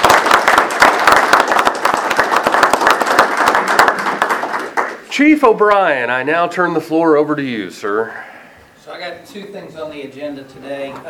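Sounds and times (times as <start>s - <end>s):
room full of people applauding: 0.0s - 5.1s
speech: 5.2s - 11.0s.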